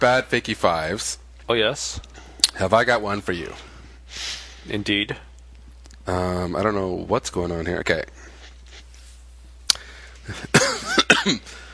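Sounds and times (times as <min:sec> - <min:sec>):
speech: 0:00.0 - 0:05.3, 0:06.1 - 0:08.3, 0:10.3 - 0:11.6
person coughing harshly: 0:10.3 - 0:11.6.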